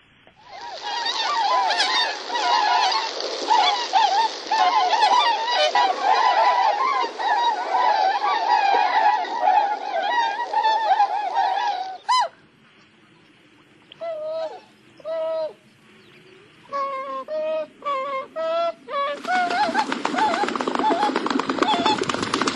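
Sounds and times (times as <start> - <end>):
tundra swans calling in a soft moaning chorus: 0.4 - 12.5, 16.5 - 22.4.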